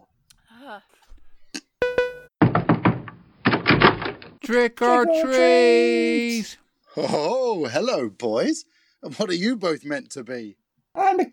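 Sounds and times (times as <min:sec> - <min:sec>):
speech: 0:00.7 - 0:01.2, 0:04.5 - 0:11.3
heavy rapid knocking on a door: 0:02.4 - 0:04.2
brief high vocal sound: 0:04.8 - 0:06.5.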